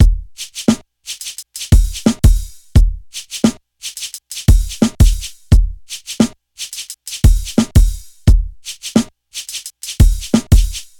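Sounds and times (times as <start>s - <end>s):
kick drum tuned to the E note: 0.0s - 0.4s, 1.7s - 3.1s, 4.5s - 5.9s, 7.2s - 8.6s, 10.0s - 10.9s
drum loop sample in E key: 0.0s - 10.9s.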